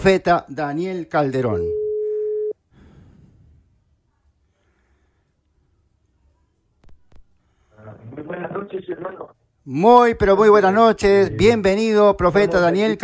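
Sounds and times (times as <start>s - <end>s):
speech: 0.0s - 1.8s, 8.7s - 13.0s
steady mid-pitched telephone tone: 1.7s - 2.6s.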